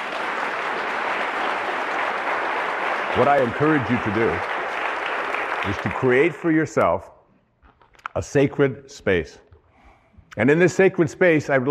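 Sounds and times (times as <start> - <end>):
audience applause: 0.0 - 6.7
speech: 3.1 - 4.5, 5.6 - 7.1, 8.2 - 9.4, 10.4 - 11.6.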